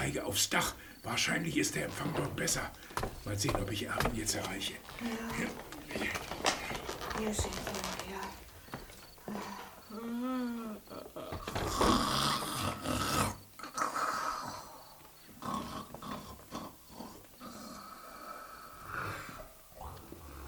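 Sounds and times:
speech: 0.1 - 8.0, 9.3 - 10.2
loud rasping snoring with snorts and gurgling: 11.6 - 14.8, 15.4 - 19.5.

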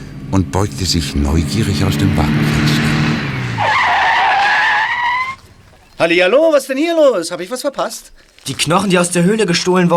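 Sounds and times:
car engine rumble approaching: 0.0 - 6.0
car tires squealing under hard braking: 0.1 - 6.0
speech: 0.3 - 2.9, 6.0 - 9.9.

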